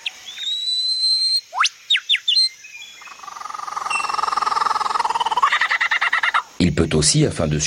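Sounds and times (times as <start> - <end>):
bird mimicking other bird species' calls: 1.5 - 6.5
speech: 6.6 - 7.6.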